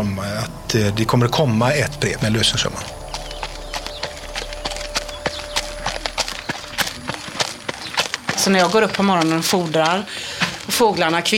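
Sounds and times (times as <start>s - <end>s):
speech: 0.0s - 3.0s, 8.5s - 11.3s
steady low hum: 0.0s - 9.4s
horses stamping hooves on a hard stable floor: 2.9s - 11.3s.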